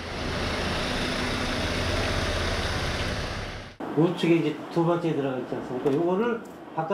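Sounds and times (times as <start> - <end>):
truck engines idling at a furniture factory loading dock: 0.0 - 3.8
speech: 4.0 - 6.9.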